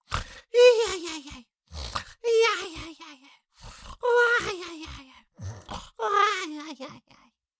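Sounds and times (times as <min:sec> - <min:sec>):
cartoon little monster voice snoring: 0:00.0 - 0:00.5, 0:01.6 - 0:02.2, 0:03.6 - 0:04.1, 0:05.3 - 0:06.0.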